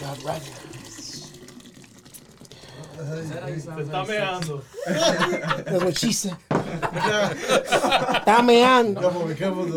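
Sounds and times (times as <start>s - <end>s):
men talking loudly: 0.0s - 1.5s, 2.8s - 9.7s
beer pouring into a glass: 0.0s - 4.4s
speech: 0.2s - 1.3s, 3.0s - 9.7s
laughter: 4.6s - 9.2s.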